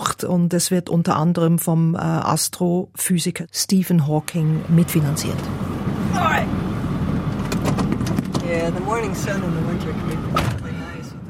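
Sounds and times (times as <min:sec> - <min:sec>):
speech: 0:00.2 - 0:06.6, 0:08.7 - 0:10.5
huge diesel truck engine rumbling driving over a field: 0:03.7 - 0:11.2
rattles and knocks from a bumpy truck ride: 0:07.3 - 0:08.7.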